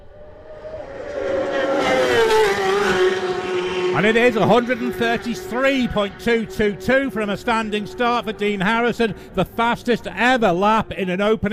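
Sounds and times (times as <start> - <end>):
racing motorcycle speeding past on a road course during qualifying: 0.0 - 7.8
speech: 4.0 - 11.5.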